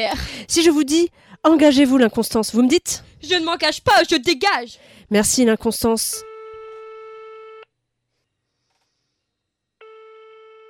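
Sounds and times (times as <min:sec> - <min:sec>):
speech: 0:00.0 - 0:06.3
telephone incoming call electronic tones: 0:06.2 - 0:07.7, 0:09.8 - 0:10.6.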